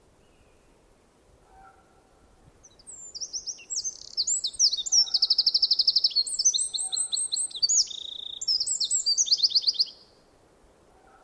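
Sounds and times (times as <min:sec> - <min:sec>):
Eurasian wren Troglodytes troglodytes singing: 0:02.6 - 0:10.0.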